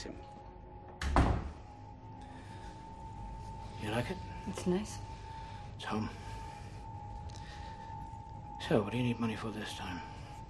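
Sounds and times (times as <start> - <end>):
apartment door closing: 0.9 - 1.6
speech: 3.8 - 5.1, 5.8 - 6.2, 8.7 - 10.1.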